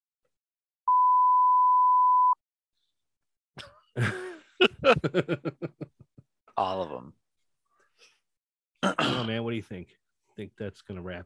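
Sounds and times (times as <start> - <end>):
high-pitched censor bleep: 0.9 - 2.4
speech: 4.0 - 5.8, 8.8 - 11.2
laughter: 4.0 - 6.2.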